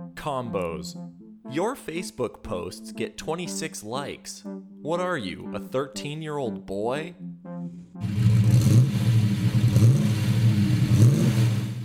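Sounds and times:
speech: 0.2s - 7.3s
V8 monster truck engine revving: 8.0s - 11.8s.

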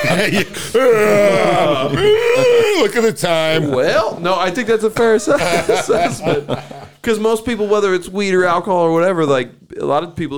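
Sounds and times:
man yawning: 0.0s - 3.1s
laughter: 0.0s - 8.3s
speech: 0.1s - 10.3s.

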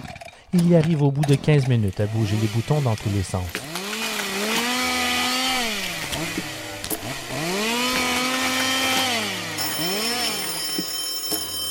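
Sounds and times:
speech: 0.5s - 3.6s
chainsaw engine revving: 1.3s - 10.6s.

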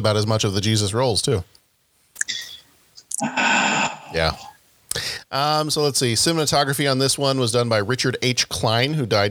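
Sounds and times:
speech: 0.0s - 1.6s, 4.1s - 9.2s
mouse clicks while clicking through pictures: 2.2s - 3.2s.

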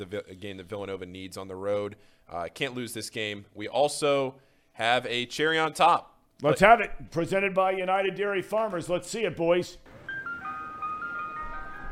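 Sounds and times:
speech: 0.0s - 10.0s
ice cream truck jingle: 9.9s - 11.9s.

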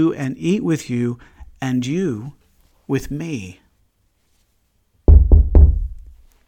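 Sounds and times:
speech: 0.0s - 3.6s
knocking on a wooden door: 5.1s - 6.0s.

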